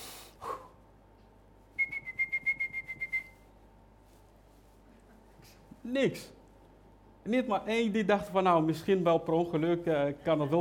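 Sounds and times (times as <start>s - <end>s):
person whistling to call animals: 1.8s - 3.4s
speech: 5.8s - 6.4s, 7.2s - 10.5s.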